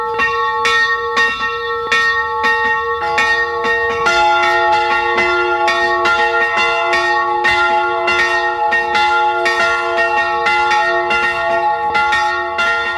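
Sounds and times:
church bells of a branch church pealing at noon in Carinthia, Austria: 0.0 - 12.9.

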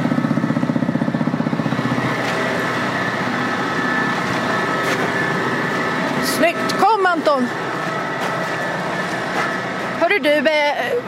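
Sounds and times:
tractor engine running: 0.0 - 11.0
speech: 7.2 - 7.6, 10.2 - 11.0.

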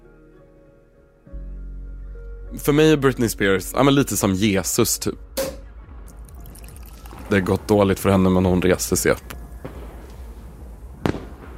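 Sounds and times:
speech: 2.5 - 5.3, 7.3 - 9.4
New Year firework exploding: 5.5 - 11.5.

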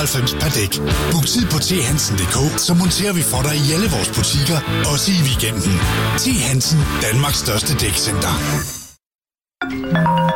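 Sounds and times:
speech: 0.0 - 8.8
phone's electronic ringtone with layered musical tones: 9.6 - 10.3.

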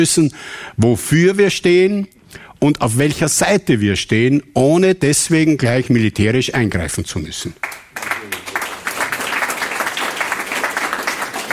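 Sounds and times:
speech: 0.0 - 8.4
audience applause in a large indoor school hall: 7.6 - 11.5.

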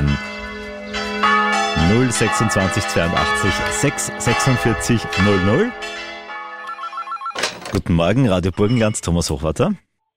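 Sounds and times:
church bells ringing: 0.0 - 7.6
speech: 2.0 - 6.1, 7.7 - 9.8.

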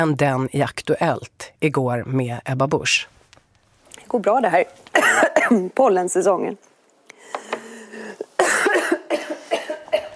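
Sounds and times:
speech: 0.0 - 3.2, 4.0 - 6.7
woman coughing during a television studio interview: 4.9 - 5.7, 8.4 - 10.1
woman clearing her throat during a television studio interview: 5.0 - 5.7, 8.4 - 10.1.

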